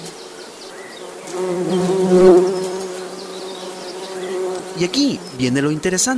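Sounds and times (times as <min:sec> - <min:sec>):
bees buzzing: 0:00.0 - 0:06.1
speech: 0:01.4 - 0:02.4, 0:04.8 - 0:06.1.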